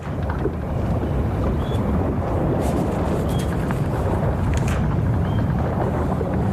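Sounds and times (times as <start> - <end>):
broad wash of open sea: 0.0 - 6.5
wind buffeting the microphone on the deck of a caravel: 0.0 - 6.5.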